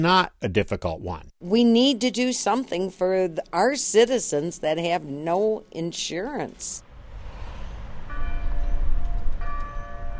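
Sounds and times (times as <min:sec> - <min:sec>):
speech: 0:00.0 - 0:06.8
rumble of traffic or crowd noise: 0:06.8 - 0:09.7
cathedral bells ringing in medieval towers in Toledo: 0:08.1 - 0:10.1.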